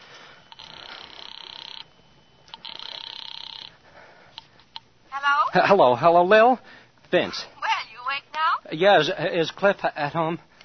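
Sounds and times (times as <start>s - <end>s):
telephone ringing over a phone line from a drugstore phone booth: 0.3s - 3.8s
speech: 5.5s - 7.5s, 8.7s - 10.5s.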